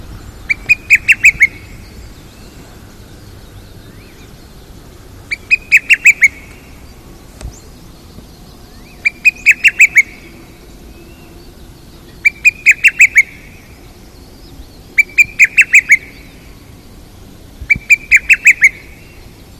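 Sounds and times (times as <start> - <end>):
lesser cuckoo Cuculus poliocephalus calling: 0.0 - 2.8, 5.2 - 6.9, 8.6 - 11.4, 12.1 - 13.8, 14.9 - 16.6, 17.6 - 19.4.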